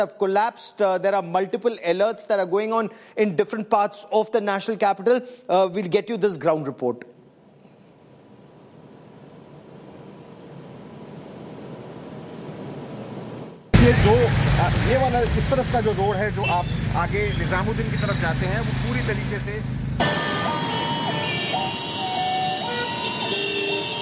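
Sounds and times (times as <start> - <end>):
speech: 0.0 - 7.2, 14.9 - 20.2
heavy road traffic engine drone in a traffic jam in Delhi India: 13.8 - 23.6
cars passing on Lodhi Road in Delhi India: 13.8 - 23.7
tonal horn-like or chiming sounds: 20.0 - 24.0.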